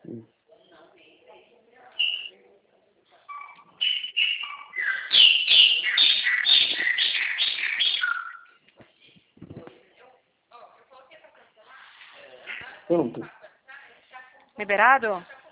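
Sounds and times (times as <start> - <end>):
many birds chirping and whistling: 2.0 - 2.3, 3.3 - 8.6
speech: 13.0 - 13.4, 14.6 - 15.3.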